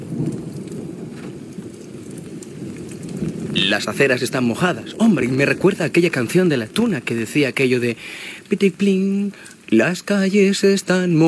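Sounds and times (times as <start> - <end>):
deep rolling rumble of thunder: 0.0 - 8.0
heavy rain pouring down: 0.0 - 11.2
speech: 3.7 - 11.2.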